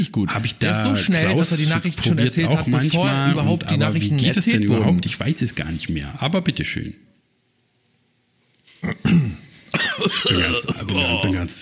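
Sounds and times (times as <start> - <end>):
speech: 0.0 - 7.1, 10.0 - 11.6
sharp loud cough: 8.8 - 11.0.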